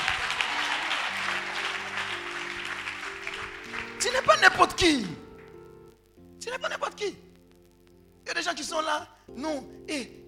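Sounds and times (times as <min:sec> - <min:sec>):
audience clapping: 0:00.0 - 0:05.6
speech: 0:04.0 - 0:05.2, 0:06.5 - 0:07.2, 0:08.3 - 0:10.2.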